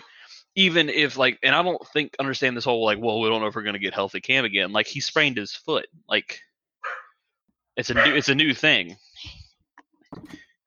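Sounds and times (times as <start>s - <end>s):
speech: 0.6s - 6.5s, 7.8s - 9.4s, 10.1s - 10.4s
dog giving a quick hoarse woof: 6.8s - 7.2s, 8.0s - 8.3s
faint soft thump: 10.1s - 10.4s.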